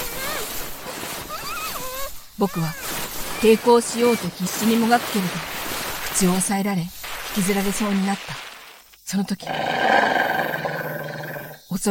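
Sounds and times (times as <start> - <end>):
speech: 2.4 - 5.6, 6.2 - 8.4, 9.1 - 10.2, 11.7 - 11.9
person imitating a large dog's growl: 9.4 - 11.6.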